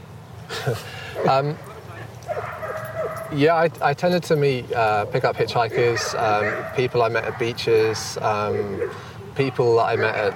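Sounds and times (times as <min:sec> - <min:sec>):
speech: 0:00.6 - 0:01.7, 0:03.3 - 0:10.3
dogs barking and yipping: 0:01.0 - 0:03.9, 0:05.2 - 0:10.3
dog yelping softly: 0:02.2 - 0:03.4, 0:05.6 - 0:10.3.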